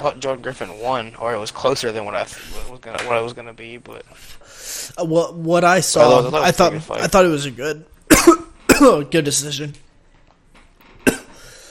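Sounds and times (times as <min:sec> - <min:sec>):
speech: 0:00.0 - 0:09.9
quiet hiss: 0:00.0 - 0:11.6
sharp cough: 0:08.1 - 0:09.1, 0:11.0 - 0:11.4.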